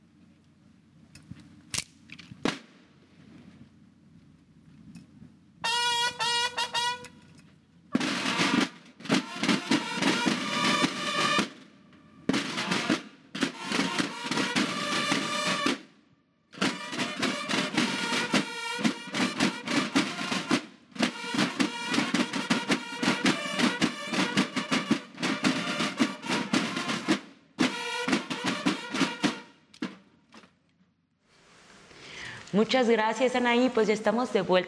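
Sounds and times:
loud military bugle calls before a parade: 5.6s - 7.3s, 8.0s - 15.8s, 16.6s - 29.6s
speech: 32.6s - 34.6s.

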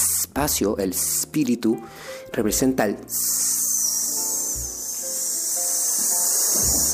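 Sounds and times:
speech: 0.4s - 3.8s
voice making a sustained hissing shushing sound: 3.1s - 6.9s.

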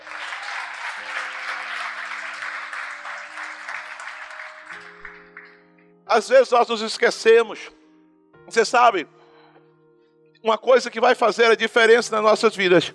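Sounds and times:
audience applauding: 0.0s - 5.6s
speech: 6.1s - 7.8s, 8.5s - 9.2s, 10.4s - 12.9s.

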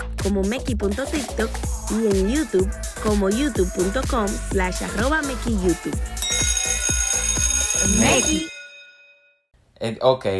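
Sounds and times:
speech: 0.2s - 6.2s, 7.8s - 8.5s, 9.8s - 10.3s
doorbell ringing: 6.2s - 9.5s.

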